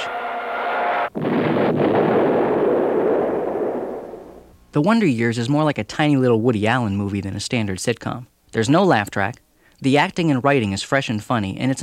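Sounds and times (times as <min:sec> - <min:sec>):
bomb dropping and exploding sound effect in a sitcom: 0:01.0 - 0:04.6
speech: 0:04.7 - 0:11.8.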